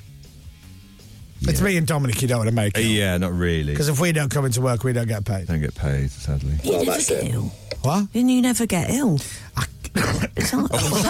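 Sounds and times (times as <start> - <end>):
speech: 1.4 - 9.7, 10.5 - 11.0
person with a returning cough coughing: 9.9 - 11.0.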